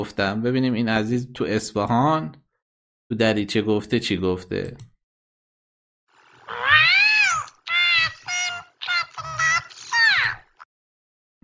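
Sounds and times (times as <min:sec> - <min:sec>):
speech: 0:00.0 - 0:02.4, 0:03.1 - 0:04.9
person imitating cat meows: 0:06.5 - 0:10.4.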